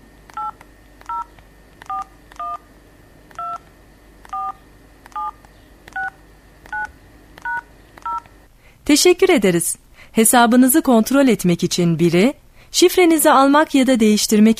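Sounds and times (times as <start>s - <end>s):
faint low hum: 0.0s - 14.5s
telephone keypad tones entering account number into bank telephone service: 0.3s - 2.6s, 3.4s - 3.7s, 4.3s - 8.3s
speech: 8.9s - 14.5s.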